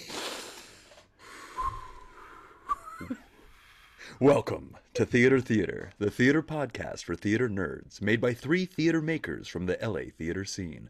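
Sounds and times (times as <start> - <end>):
deep breath: 0.0 - 4.2
speech: 3.0 - 3.3, 4.2 - 10.8.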